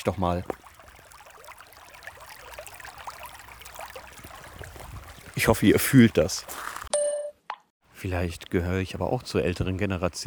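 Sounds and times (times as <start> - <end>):
speech: 0.0 - 0.6, 5.4 - 6.7, 8.0 - 10.2
stream water splashing around a large branch: 0.0 - 6.9.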